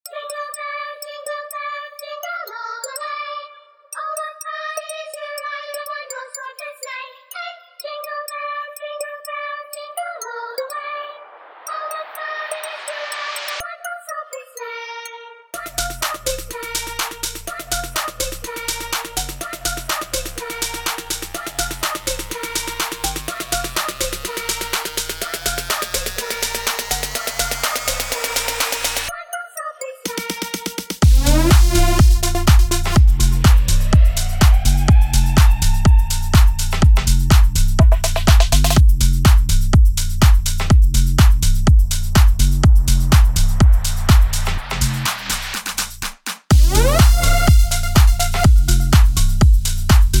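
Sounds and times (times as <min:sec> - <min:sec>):
bass remix of a Christmas song: 0:15.6 - 0:29.1, 0:31.0 - 0:50.1.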